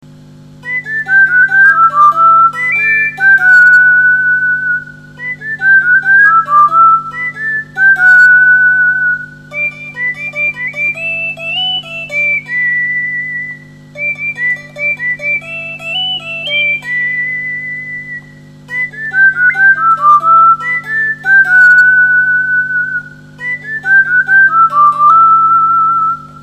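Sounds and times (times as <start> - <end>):
person whistling a western tune: 0.6 - 26.4.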